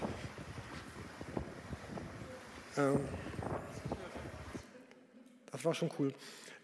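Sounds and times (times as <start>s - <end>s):
wind buffeting the microphone aboard a sailing boat: 0.0s - 4.6s
speech: 2.8s - 3.6s, 5.6s - 6.4s.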